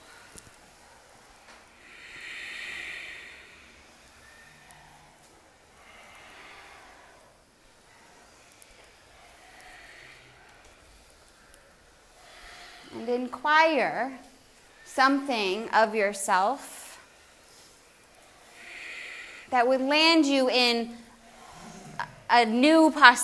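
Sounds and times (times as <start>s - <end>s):
ujjayi breathing in a yoga class holding chair pose: 0.0s - 13.0s, 16.8s - 19.5s, 21.0s - 22.3s
speech: 13.1s - 14.2s, 15.0s - 16.8s, 19.5s - 21.0s, 22.3s - 23.2s.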